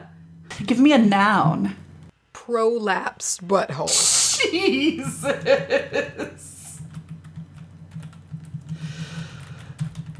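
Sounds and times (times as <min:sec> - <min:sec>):
speech: 0:00.6 - 0:01.8, 0:02.5 - 0:06.5
laughter: 0:04.5 - 0:06.7
typing on a computer keyboard: 0:06.8 - 0:10.1.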